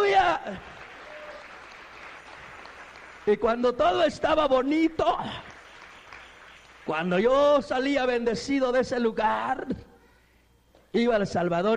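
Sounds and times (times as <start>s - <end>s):
church congregation applauding: 0.0s - 7.7s
speech: 0.4s - 0.8s, 3.2s - 5.5s, 6.9s - 9.9s, 10.9s - 11.7s.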